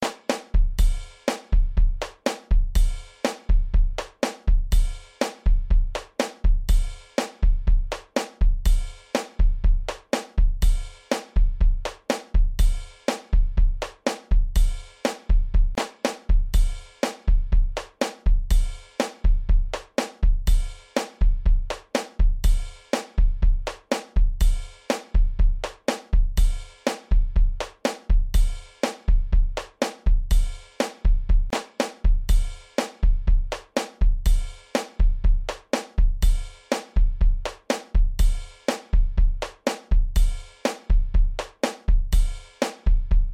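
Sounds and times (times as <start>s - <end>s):
drum pattern: 0.0s - 43.3s.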